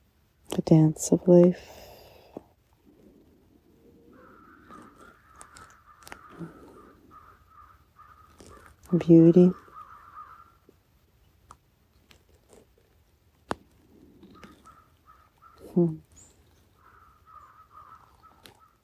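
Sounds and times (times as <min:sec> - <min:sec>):
speech: 0:00.7 - 0:01.9, 0:08.9 - 0:09.6, 0:15.8 - 0:16.1
crows cawing: 0:04.0 - 0:08.9, 0:09.6 - 0:10.7, 0:14.4 - 0:15.7, 0:16.8 - 0:18.8.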